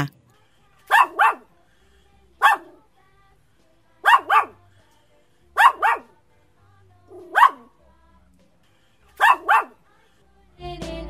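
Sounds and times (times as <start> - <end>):
dog barking: 0.8 - 1.5, 2.4 - 2.9, 4.0 - 4.6, 5.6 - 6.2, 7.1 - 7.7, 9.2 - 9.8.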